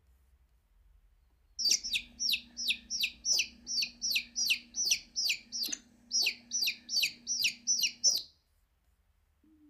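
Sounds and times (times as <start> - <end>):
bird chirping: 1.6 - 8.4.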